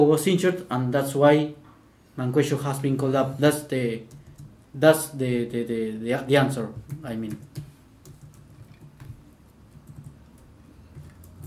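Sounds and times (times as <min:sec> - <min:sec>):
speech: 0:00.0 - 0:01.6, 0:02.2 - 0:07.6
low hum: 0:00.0 - 0:11.4
computer keyboard typing: 0:04.0 - 0:04.6, 0:06.6 - 0:11.4.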